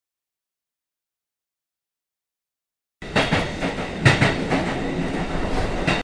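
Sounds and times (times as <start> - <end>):
train rumbling on rails: 3.0 - 6.0
train wheels clacking over track joints: 3.0 - 6.0.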